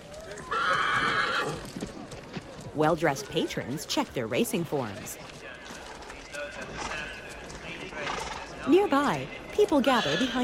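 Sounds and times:
low noise at a racetrack: 0.0s - 10.4s
horse neighing at a racetrack: 0.4s - 1.6s, 9.8s - 10.4s
speech: 2.8s - 5.3s, 8.7s - 10.4s.

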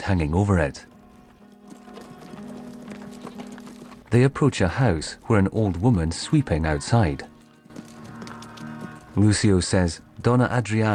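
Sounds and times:
speech: 0.0s - 0.9s, 4.1s - 7.3s, 9.2s - 10.9s
horses' hooves clip-clopping as riders enter a town: 0.9s - 10.4s.

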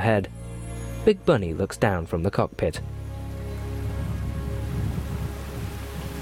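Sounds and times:
speech: 0.0s - 0.4s, 1.0s - 3.0s
broad low rumble: 2.8s - 6.2s
steady dense torrential rain in a bay with boats: 3.2s - 6.2s.

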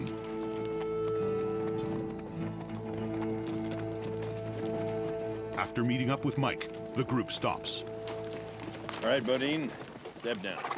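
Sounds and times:
music: 0.0s - 10.2s
horses galloping: 0.0s - 10.7s
speech: 5.6s - 8.0s, 9.0s - 10.7s.

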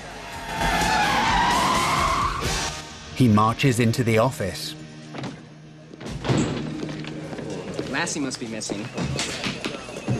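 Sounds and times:
car tire squeal while skidding and spinning into a parking space: 0.0s - 2.8s
speech: 3.2s - 4.8s, 8.0s - 9.6s.

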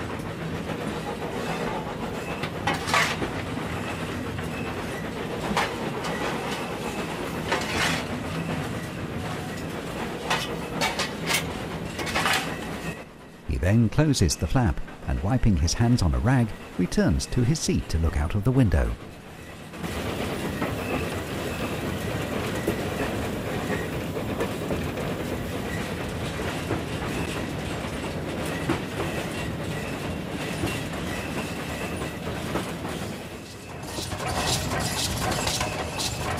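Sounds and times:
faint clickety-clack of steam train wheels on rails: 0.0s - 13.4s, 19.0s - 36.3s
coal-fired steam locomotive pulling carriages along rails through countryside: 0.0s - 36.3s
speech: 13.7s - 19.1s.

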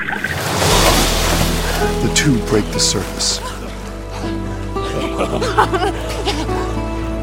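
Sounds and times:
helicopter crashing into water: 0.2s - 3.0s
speech: 2.1s - 3.5s, 5.2s - 6.4s
laughter: 2.9s - 7.1s.

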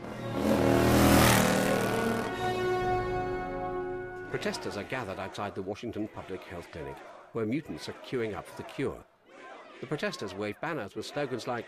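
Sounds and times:
motorcycle engine roaring riding out through mansion gates: 0.0s - 3.4s
speech: 4.3s - 9.1s, 9.8s - 11.6s.

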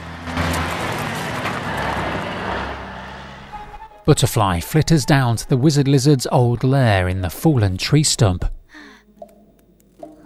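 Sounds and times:
heavy garbage truck engine rumbling as it pulls away: 0.0s - 5.8s
speech: 4.0s - 8.9s.

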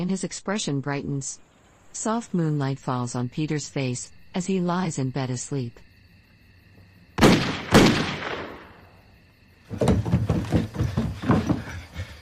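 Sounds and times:
speech: 0.0s - 5.9s
gunshots: 7.2s - 8.8s
knocking and clattering noises: 9.7s - 11.8s.

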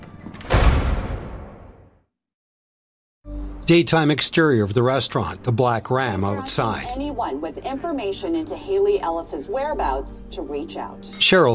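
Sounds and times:
cabin door closing: 0.0s - 1.1s
speech: 3.7s - 11.5s.

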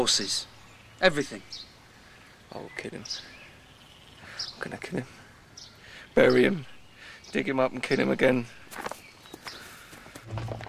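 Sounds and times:
speech: 0.0s - 1.7s, 2.5s - 3.4s, 4.6s - 5.2s, 6.2s - 6.7s, 7.3s - 9.0s
soft footsteps of people walking through a forest leading horses: 8.7s - 10.6s.

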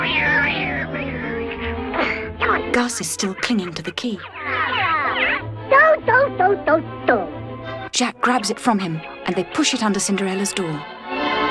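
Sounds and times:
startled cat yowling: 0.0s - 6.4s
speech: 2.8s - 4.7s, 5.7s - 7.2s, 8.0s - 11.0s.

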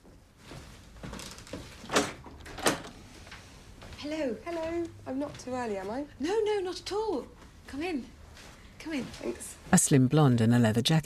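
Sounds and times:
front door opening: 1.1s - 3.1s
speech: 4.0s - 8.2s, 8.8s - 11.0s.

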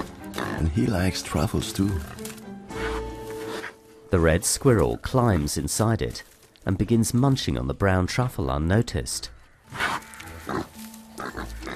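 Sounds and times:
pig rooting through leaves with its snout: 0.0s - 7.2s, 9.7s - 11.7s
speech: 0.6s - 2.2s, 4.1s - 9.4s.

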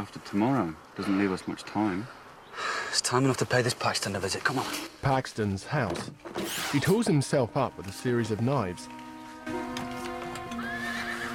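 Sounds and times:
speech: 0.0s - 9.6s
horse neighing at a house: 10.5s - 11.3s.

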